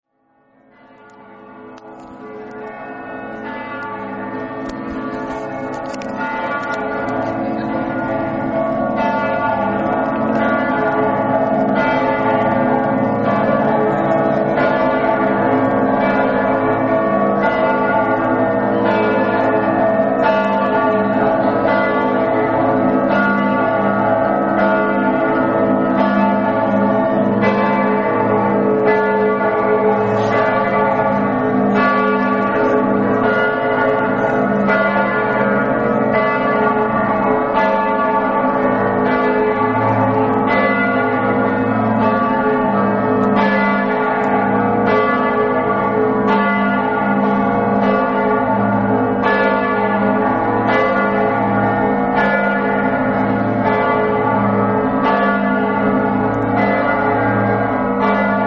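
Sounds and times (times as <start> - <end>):
bells ringing in Udine: 0.3 - 58.4.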